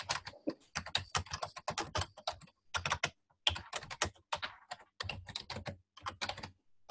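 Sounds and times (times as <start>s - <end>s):
typing on a computer keyboard: 0.0s - 6.8s.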